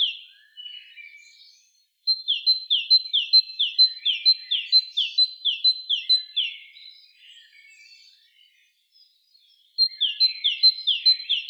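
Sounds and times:
great tit Parus major singing: 0.0 - 0.8, 1.5 - 7.1, 9.5 - 11.4.

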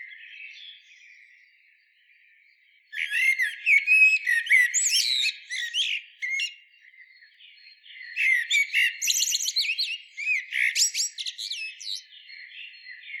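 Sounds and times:
Eurasian blackbird Turdus merula giving high twittering and squeaky notes: 2.9 - 6.6, 8.0 - 13.1.

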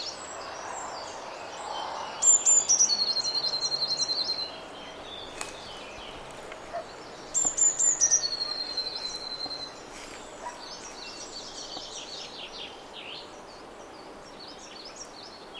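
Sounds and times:
Eurasian blue tit Cyanistes caeruleus song: 0.0 - 15.5.

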